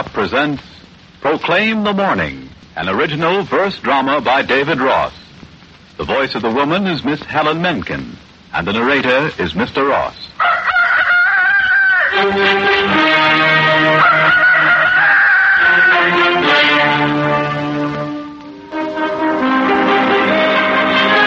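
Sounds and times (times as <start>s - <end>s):
speech: 0.0s - 5.2s, 6.0s - 10.3s, 12.2s - 13.0s
rooster crowing: 10.4s - 12.4s, 13.1s - 16.6s
sustained orchestral music: 12.1s - 15.0s, 15.6s - 21.2s.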